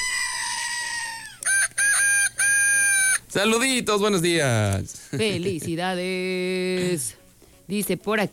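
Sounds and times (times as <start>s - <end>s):
rooster crowing: 0.0s - 3.3s
speech: 3.3s - 8.3s.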